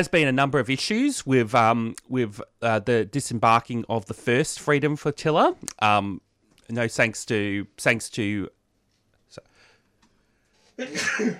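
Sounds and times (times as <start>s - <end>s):
speech: 0.0s - 8.6s, 9.3s - 9.5s, 10.8s - 11.3s
single sharp breathy sneeze: 10.8s - 11.3s.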